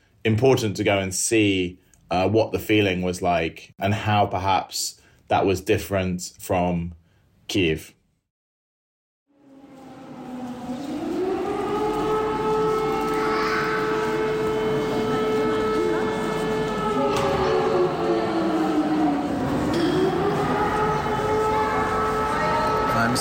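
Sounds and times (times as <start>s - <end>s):
speech: 0.2s - 8.0s
air raid siren wailing at a train station: 9.3s - 23.1s
low rumble: 9.4s - 23.1s.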